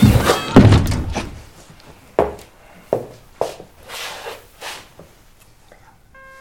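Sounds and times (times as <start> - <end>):
school director's office door slamming shut with a heavy bang: 0.0 - 1.4
fainter knocks and thuds of an office door settling: 0.0 - 1.5.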